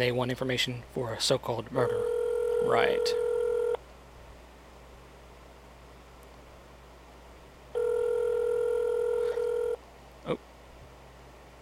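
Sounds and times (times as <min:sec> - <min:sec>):
speech: 0:00.0 - 0:03.3
quiet hiss on a phone line: 0:00.0 - 0:11.6
telephone tone on a phone line: 0:01.9 - 0:03.8, 0:07.8 - 0:09.8.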